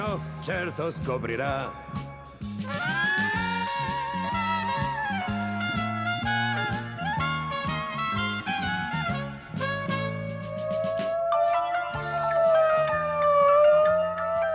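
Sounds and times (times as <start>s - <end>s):
dense rhythmic music-like backdrop: 0.0s - 14.5s
speech: 0.2s - 2.0s
police siren wailing: 2.6s - 14.5s.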